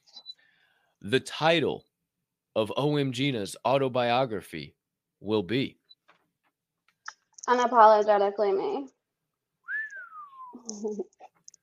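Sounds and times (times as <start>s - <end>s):
speech: 1.0s - 1.9s, 2.6s - 5.8s, 7.5s - 9.0s, 10.7s - 11.1s
person whistling: 9.7s - 10.7s.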